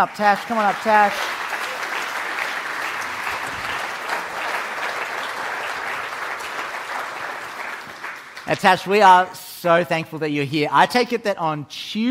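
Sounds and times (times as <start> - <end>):
speech: 0.0 - 1.4, 8.5 - 12.1
audience applause for a new member of staff: 0.0 - 9.3.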